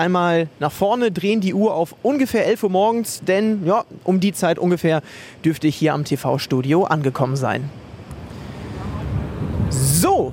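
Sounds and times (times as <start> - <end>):
speech: 0.0 - 7.8, 10.0 - 10.3
wind buffeting the microphone near open water: 7.9 - 10.3.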